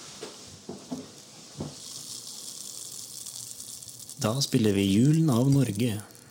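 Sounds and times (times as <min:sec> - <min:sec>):
thick stream of liquid pouring: 0:01.0 - 0:06.2
speech: 0:04.2 - 0:06.1.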